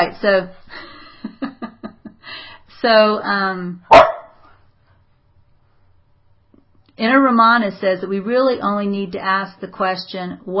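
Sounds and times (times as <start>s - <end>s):
speech: 0.0s - 1.4s, 2.8s - 4.0s, 7.0s - 10.5s
small dog barking: 3.9s - 4.4s.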